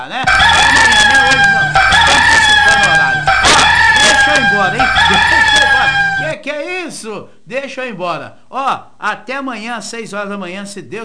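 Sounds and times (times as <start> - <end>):
speech: 0.0 - 0.4, 4.6 - 5.1, 6.4 - 11.0
rooster crowing: 0.2 - 6.4.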